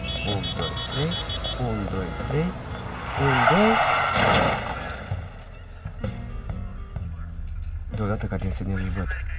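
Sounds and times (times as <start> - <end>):
speech: 0.2 - 4.7, 8.0 - 9.3
car screeching past: 0.4 - 5.7.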